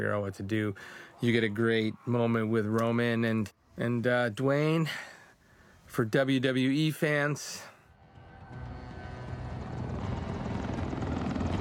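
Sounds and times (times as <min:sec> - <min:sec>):
speech: 0:00.0 - 0:05.2, 0:05.9 - 0:07.7
Black Hawk helicopters flying: 0:08.3 - 0:11.5.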